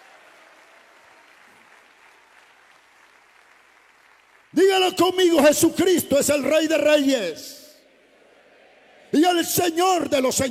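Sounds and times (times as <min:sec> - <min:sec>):
church audience applauding during a sermon: 0:00.0 - 0:05.0
speech: 0:04.6 - 0:07.6, 0:09.1 - 0:10.4.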